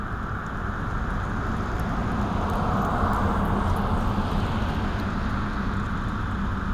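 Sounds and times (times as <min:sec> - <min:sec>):
electric vehicle with noise-based AVAS passing by forwards: 0:00.1 - 0:06.7.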